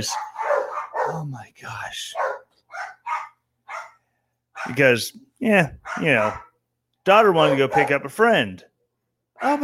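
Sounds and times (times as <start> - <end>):
speech: 0.0 - 0.3, 1.0 - 2.4, 4.6 - 6.5, 7.1 - 8.7, 9.4 - 9.6
dogs barking at home: 0.0 - 1.3, 2.1 - 4.9, 5.7 - 6.6, 7.2 - 8.2, 9.4 - 9.6.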